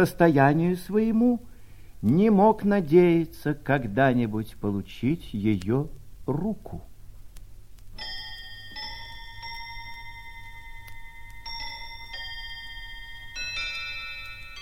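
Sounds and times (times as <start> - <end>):
speech: 0.0 - 6.9
faint low hum: 0.0 - 14.6
table clock chiming the quarter hour: 8.0 - 14.6.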